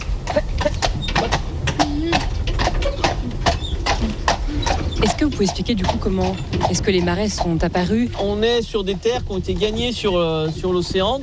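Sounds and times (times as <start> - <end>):
Breton draft horse hooves clip-clopping while walked in a marsh: 0.0 - 11.2
low rumbling outdoor background: 0.0 - 11.2
speech: 5.3 - 11.2.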